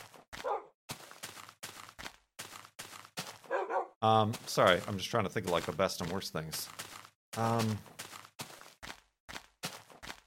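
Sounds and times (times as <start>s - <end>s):
dog barking: 0.4s - 0.8s, 3.4s - 4.0s
speech: 4.0s - 7.9s.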